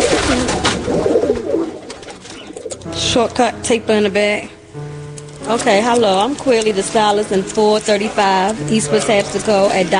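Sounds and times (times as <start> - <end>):
pigeons cooing: 0.0 - 3.0
speech: 0.3 - 0.6, 3.1 - 4.6, 5.4 - 9.9.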